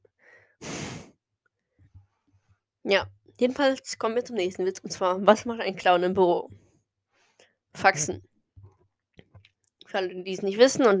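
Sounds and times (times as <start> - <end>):
person blowing a sharp forceful burst of air through the nose: 0.6 - 1.2
speech: 2.8 - 6.6, 7.7 - 8.3, 9.9 - 10.9.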